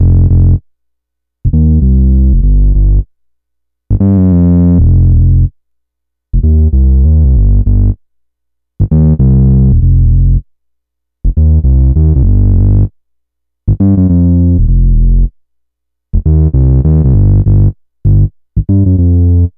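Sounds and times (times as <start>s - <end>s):
FM synth bass loop: 0.0s - 0.6s, 1.5s - 3.0s, 3.9s - 5.5s, 6.4s - 8.0s, 8.8s - 10.4s, 11.3s - 12.9s, 13.7s - 15.3s, 16.2s - 19.5s.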